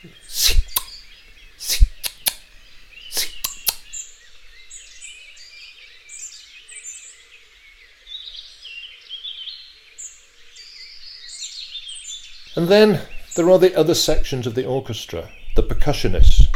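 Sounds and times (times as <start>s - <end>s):
speech: 0.0s - 0.6s, 12.6s - 16.4s
birds chirping and twittering: 0.0s - 16.5s
bird clicking call notes: 0.3s - 1.0s, 1.6s - 2.5s, 3.1s - 3.9s.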